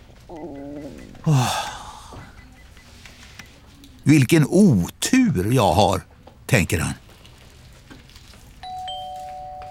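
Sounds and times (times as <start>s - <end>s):
low hum: 0.0s - 9.6s
speech: 0.3s - 1.7s, 4.0s - 7.0s
two-tone electronic queue ticket ding-dong chime: 8.6s - 9.6s.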